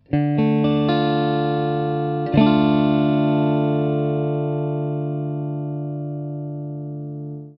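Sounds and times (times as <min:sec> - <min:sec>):
guitar open chords in D minor: 0:00.0 - 0:07.5.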